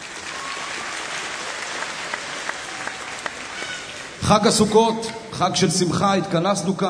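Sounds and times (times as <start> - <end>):
applause from a sizable crowd: 0.0 - 4.8
speech: 4.3 - 6.8.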